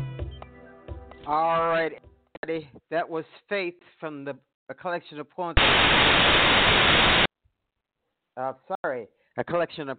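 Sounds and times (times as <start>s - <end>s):
speech: 1.3s - 7.2s, 8.4s - 9.9s
loud broadband radio static: 5.6s - 7.3s.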